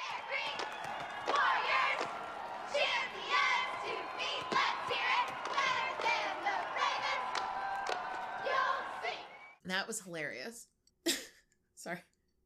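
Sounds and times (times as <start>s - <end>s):
busy crowd-like backdrop: 0.0s - 9.6s
cheerleading squad chanting a cheer: 0.0s - 9.6s
speech: 9.7s - 10.7s, 11.8s - 12.1s.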